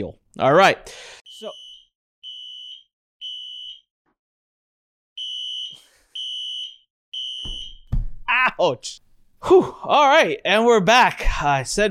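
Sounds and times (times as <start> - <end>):
speech: 0.0 - 1.6, 8.3 - 11.8
building fire alarm beeping: 1.3 - 3.9, 5.2 - 7.9.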